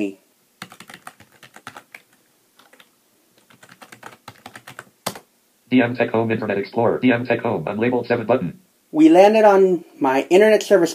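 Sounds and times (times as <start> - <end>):
speech: 0.0 - 0.2, 5.7 - 10.9
typing a website address on a computer keyboard: 0.6 - 5.3.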